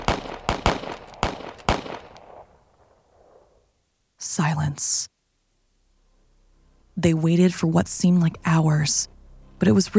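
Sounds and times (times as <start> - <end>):
gunfire from a patrol of soldiers shooting weapons into a snow cave entrance: 0.0 - 3.5
speech: 4.3 - 5.1, 7.0 - 9.9.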